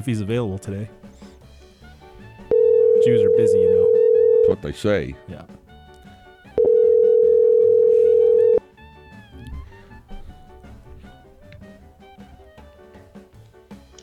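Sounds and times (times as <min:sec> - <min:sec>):
speech: 0:00.0 - 0:01.1, 0:03.0 - 0:05.6
quiet musical background: 0:00.0 - 0:14.0
telephone ringing tone: 0:02.5 - 0:04.6, 0:06.6 - 0:08.6.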